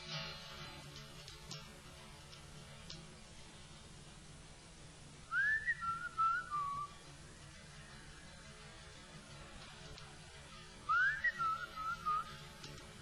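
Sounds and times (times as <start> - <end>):
quiet hissy background: 0.0 - 13.0
person whistling a short melodic phrase: 5.3 - 6.9, 10.9 - 12.3.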